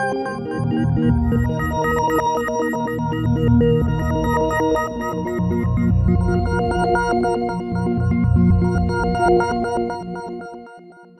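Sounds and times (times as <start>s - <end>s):
Roland JD800 and Roland JV880 synthesizer pad: 0.2s - 10.7s.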